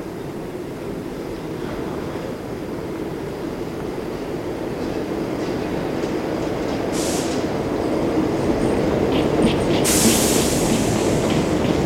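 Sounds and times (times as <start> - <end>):
subway train wheels rumbling on rails arriving at station: 0.0 - 11.8
subway train brakes hissing and squealing: 6.9 - 7.6, 9.2 - 11.8.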